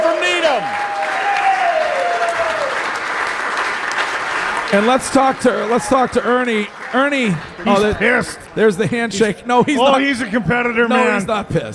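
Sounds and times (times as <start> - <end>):
audience applauding: 0.0 - 9.1
speech: 4.7 - 11.7.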